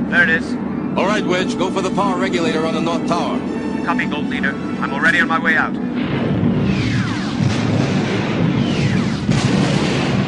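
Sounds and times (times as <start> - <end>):
speech: 0.1 - 6.1
chain reaction of internal explosions: 5.9 - 10.2.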